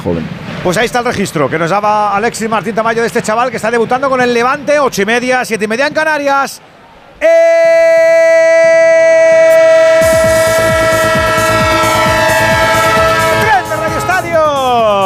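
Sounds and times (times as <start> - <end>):
speech: 0.0 - 9.7
train horn sounding a multi-tone chord: 9.5 - 14.8.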